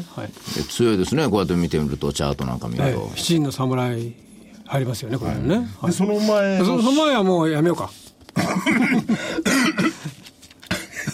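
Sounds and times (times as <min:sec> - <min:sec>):
speech: 0:00.0 - 0:08.0, 0:08.6 - 0:10.2
harsh raspy coughing fit: 0:08.4 - 0:10.1, 0:10.7 - 0:11.1
throat-clearing coughs: 0:08.4 - 0:11.1.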